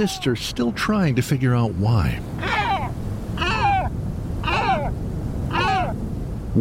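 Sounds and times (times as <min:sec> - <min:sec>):
speech: 0:00.0 - 0:02.6
low rumble of wind or surf: 0:00.0 - 0:06.5
great black-backed gull calling: 0:02.2 - 0:06.0.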